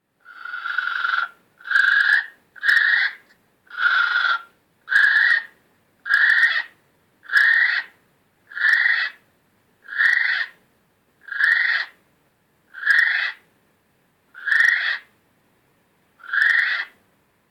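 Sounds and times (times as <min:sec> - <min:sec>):
female kiwi calling: 0:00.2 - 0:07.9, 0:08.5 - 0:09.2, 0:09.9 - 0:10.6, 0:11.2 - 0:12.0, 0:12.7 - 0:13.4, 0:14.4 - 0:15.1, 0:16.2 - 0:17.0.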